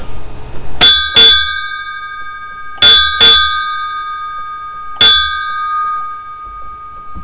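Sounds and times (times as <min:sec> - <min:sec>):
navy bell ringing: 0:00.8 - 0:07.2.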